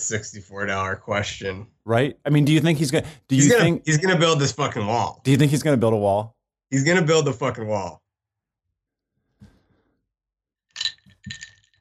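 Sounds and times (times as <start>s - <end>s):
speech: 0.1s - 8.0s
glass clinking: 10.8s - 11.7s.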